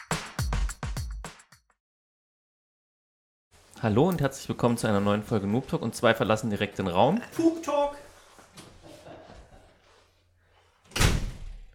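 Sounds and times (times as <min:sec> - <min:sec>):
speech: 0:03.8 - 0:08.0
door slamming shut: 0:10.9 - 0:11.7.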